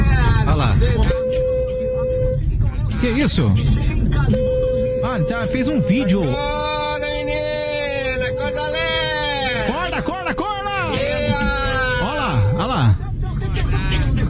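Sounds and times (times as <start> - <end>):
busy street noise: 0.0 - 14.2
car horn honking as the car drives past on a street: 0.9 - 2.5, 4.2 - 13.0
speech: 3.0 - 4.5, 5.1 - 6.6
voices shouting and chanting: 5.1 - 14.2.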